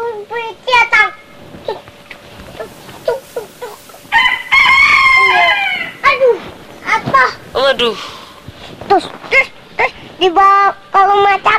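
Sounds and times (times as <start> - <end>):
chicken squawking: 2.6 - 6.2
rooster crowing: 3.6 - 6.1
speech: 7.7 - 8.2, 8.9 - 9.5, 10.2 - 11.5.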